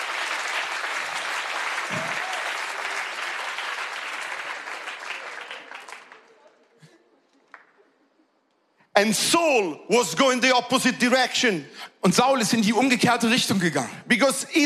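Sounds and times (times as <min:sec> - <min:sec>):
congregational applause in a church: 0:00.0 - 0:07.7
speech: 0:09.0 - 0:14.6.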